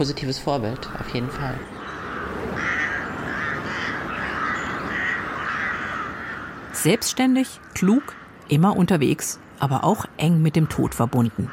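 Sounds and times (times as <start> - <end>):
speech: 0.0 - 1.8, 6.8 - 11.5
raven cawing: 0.6 - 8.8, 11.3 - 11.5.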